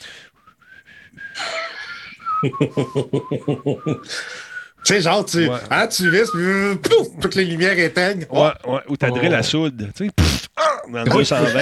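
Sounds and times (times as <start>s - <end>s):
person whistling: 0.4s - 5.0s
laughter: 1.4s - 4.2s, 11.1s - 11.6s
speech: 2.4s - 4.2s, 4.9s - 10.3s, 10.9s - 11.6s.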